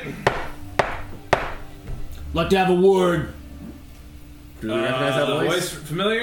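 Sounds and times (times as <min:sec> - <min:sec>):
firm knocks on a wooden door: 0:00.2 - 0:02.0
speech: 0:02.3 - 0:03.4, 0:04.6 - 0:06.2.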